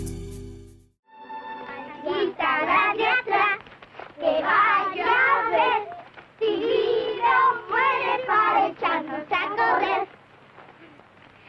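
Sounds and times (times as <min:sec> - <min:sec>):
children singing a traditional children's song: 0:01.5 - 0:03.6, 0:04.2 - 0:10.1.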